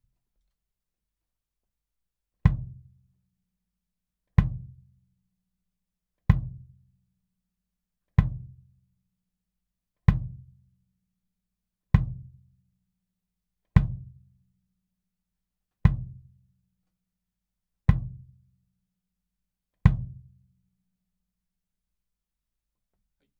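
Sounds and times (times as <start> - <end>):
kick drum pad: 2.4 - 3.0, 4.4 - 4.9, 6.3 - 6.8, 8.2 - 8.7, 10.0 - 10.6, 12.0 - 12.4, 13.8 - 14.2, 15.8 - 16.4, 17.9 - 18.4, 19.8 - 20.4.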